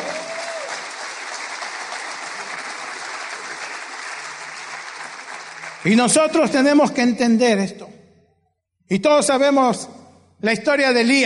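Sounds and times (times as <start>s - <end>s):
large congregation applauding: 0.0s - 6.8s
speech: 5.8s - 8.0s, 8.9s - 11.2s.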